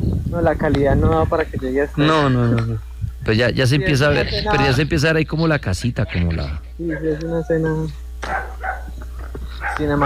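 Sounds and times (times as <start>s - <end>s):
low constant hum: 0.0s - 10.0s
speech: 0.3s - 8.4s, 9.8s - 10.0s
dogs barking at night near a small house: 6.4s - 10.0s.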